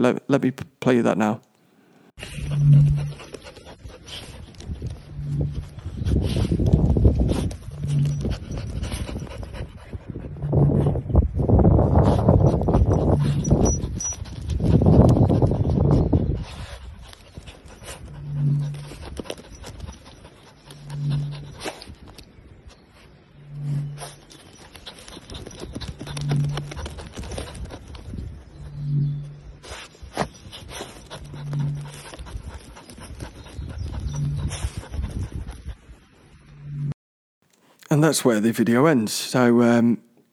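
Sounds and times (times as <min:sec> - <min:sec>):
speech: 0:00.0 - 0:01.5, 0:02.2 - 0:02.8, 0:38.0 - 0:40.1
two excited dogs digging and scratching: 0:02.1 - 0:36.4
low steady throbbing hum: 0:02.2 - 0:03.9, 0:04.5 - 0:16.4, 0:18.0 - 0:21.6, 0:23.2 - 0:29.7, 0:31.0 - 0:35.7, 0:36.3 - 0:37.0
wind gusts across the microphone: 0:02.2 - 0:36.9.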